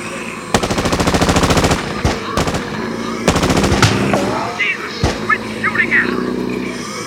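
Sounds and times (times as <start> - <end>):
voices talking: 0.0 - 7.0
automatic gunfire from a turret gun mounted on a van: 0.5 - 5.5.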